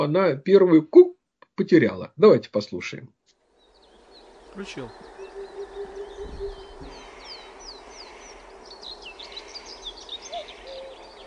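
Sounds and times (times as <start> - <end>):
speech: 0.0 - 3.2, 4.6 - 5.1
small birds chirping and twittering: 3.5 - 11.2
oriental cuckoo giving soft low hollow hoop notes: 3.8 - 11.2.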